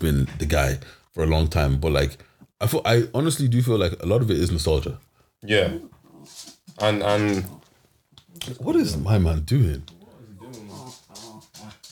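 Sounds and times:
speech: 0.0s - 7.6s, 8.4s - 10.0s
hyper attention-seeking dog whimpering: 9.9s - 11.8s.

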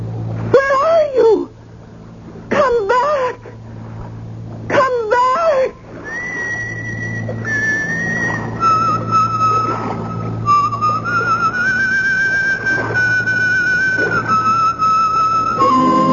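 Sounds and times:
steady low hum: 0.0s - 16.1s
person whistling a slow wandering tune: 6.0s - 16.1s.

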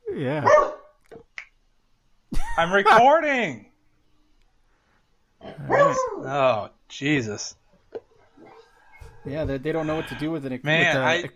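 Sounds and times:
speech: 0.2s - 0.7s, 2.6s - 3.7s, 5.7s - 7.6s, 9.2s - 11.3s
dogs barking: 0.4s - 1.0s, 5.6s - 6.3s, 8.2s - 10.1s
dogs yipping: 5.7s - 6.3s, 8.1s - 10.1s.

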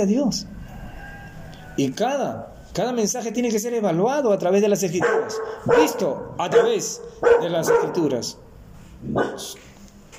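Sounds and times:
speech: 0.0s - 0.6s, 1.8s - 8.4s, 9.0s - 9.7s
small dog barking: 5.0s - 8.1s, 9.1s - 9.6s.

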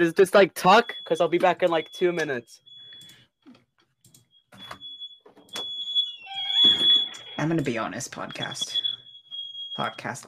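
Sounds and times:
speech: 0.0s - 2.7s, 7.4s - 8.8s, 9.8s - 10.2s
fire alarm shrill high-pitched tone: 0.0s - 3.3s, 4.3s - 10.2s.

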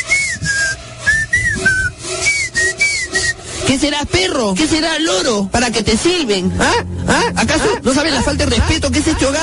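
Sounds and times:
friends whistling at the front door of a home: 0.0s - 3.5s
noisy background: 0.0s - 9.4s
speech: 3.7s - 9.4s.

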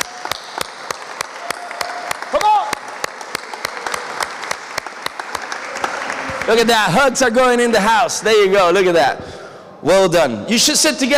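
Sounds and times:
audience applauding for fathers: 0.0s - 7.6s
speech: 6.5s - 11.1s.

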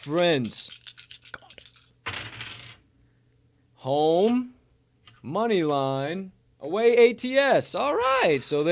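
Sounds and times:
speech: 0.0s - 0.8s, 3.8s - 4.6s, 5.2s - 8.6s
several small dice rattling as they are shaken and rolled: 0.0s - 2.8s.

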